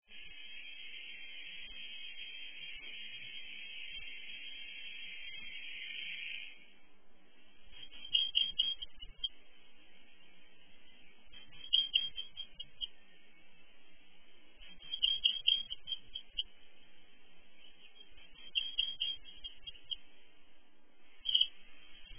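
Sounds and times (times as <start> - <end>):
reed bunting singing and calling: 7.8 - 9.4, 11.4 - 13.0, 14.7 - 16.5, 17.6 - 20.1, 21.2 - 22.1.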